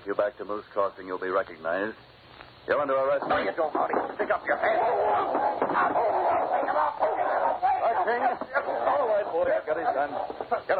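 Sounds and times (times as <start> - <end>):
speech: 0.1 - 10.7
laughter: 4.0 - 10.7
dog barking and snarling fiercely while attacking a man: 4.6 - 9.2.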